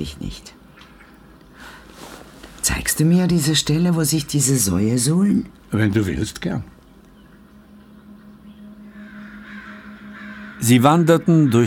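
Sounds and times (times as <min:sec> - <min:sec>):
speech: 0:00.0 - 0:00.6, 0:02.9 - 0:06.8, 0:10.7 - 0:11.6
steady low hum of outdoor noise: 0:00.0 - 0:11.6
crows cawing near a forest edge: 0:07.0 - 0:11.6.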